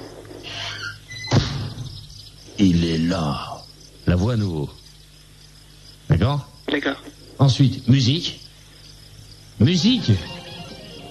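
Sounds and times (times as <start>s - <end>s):
door creaking as it swings: 0.4s - 1.5s
door shutting with a solid thud: 1.1s - 2.0s
speech: 2.6s - 3.5s, 4.1s - 4.8s, 6.2s - 8.4s, 9.6s - 10.4s.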